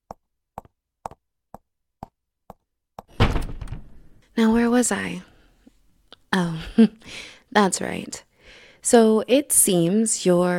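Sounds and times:
steady thuds like footsteps: 0:03.0 - 0:04.2
door shutting with a loud heavy slam and rattle: 0:03.1 - 0:04.2
speech: 0:04.4 - 0:05.3, 0:06.3 - 0:10.5.

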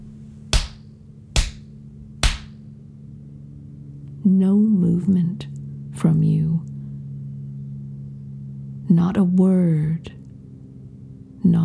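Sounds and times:
sharp slow spanking slaps: 0:00.0 - 0:02.6
faint low hum: 0:00.0 - 0:11.6
speech: 0:04.2 - 0:06.6, 0:09.2 - 0:09.6.

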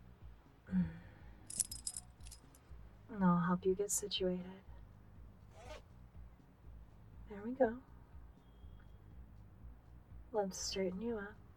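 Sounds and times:
speech: 0:03.1 - 0:04.7, 0:07.3 - 0:07.9, 0:10.3 - 0:11.4
metallic rasp of a zipper being pulled up: 0:05.5 - 0:05.8.

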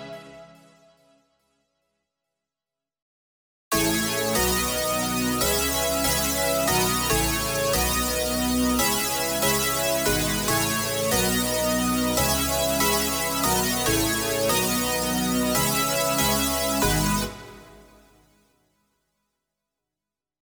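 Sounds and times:
lead bass synth: 0:03.7 - 0:18.0.

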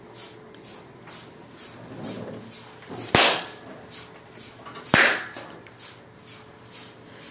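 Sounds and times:
sharp slaps to a gagged man's genitals: 0:03.1 - 0:03.6, 0:04.9 - 0:05.6.

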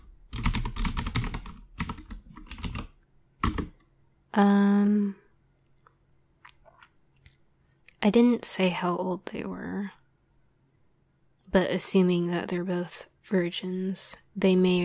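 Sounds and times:
typing on a computer keyboard: 0:00.0 - 0:03.8
speech: 0:04.4 - 0:05.2, 0:08.0 - 0:10.0, 0:11.5 - 0:14.8.

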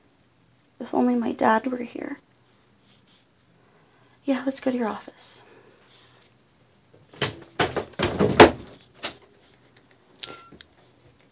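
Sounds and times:
speech: 0:00.8 - 0:02.2, 0:04.3 - 0:05.4
door swinging shut with solid thunks: 0:07.2 - 0:08.7.

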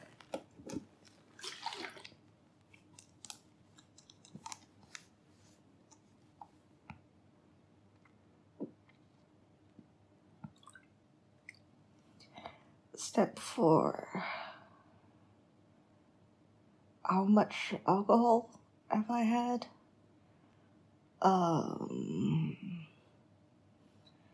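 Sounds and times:
handling sounds: 0:00.0 - 0:06.6
water dripping: 0:01.0 - 0:03.4, 0:10.4 - 0:11.7
speech: 0:13.2 - 0:14.3, 0:17.1 - 0:19.8, 0:21.2 - 0:21.8.

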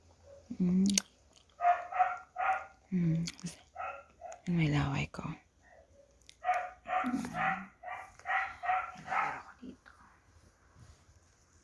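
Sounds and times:
dog barking and yelping: 0:00.2 - 0:00.5, 0:01.6 - 0:02.8, 0:03.7 - 0:04.5, 0:05.7 - 0:09.6
speech: 0:00.5 - 0:01.1, 0:02.9 - 0:03.6, 0:04.5 - 0:05.4.

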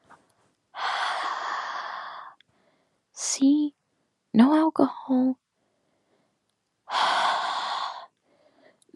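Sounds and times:
long breathy exhalation blown out close to someone: 0:00.8 - 0:02.9, 0:06.9 - 0:08.8
speech: 0:04.4 - 0:05.4.

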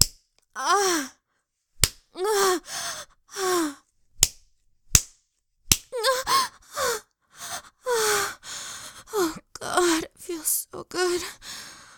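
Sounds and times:
hand spanking bare buttocks: 0:00.0 - 0:00.2, 0:01.8 - 0:02.1, 0:04.2 - 0:05.9
person gasping and moaning breathily: 0:00.6 - 0:01.2, 0:02.2 - 0:03.9, 0:06.0 - 0:11.9
speech: 0:00.6 - 0:01.2.

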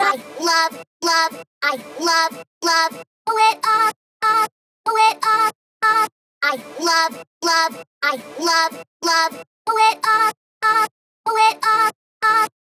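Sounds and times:
layered vocals: 0:00.0 - 0:12.4.

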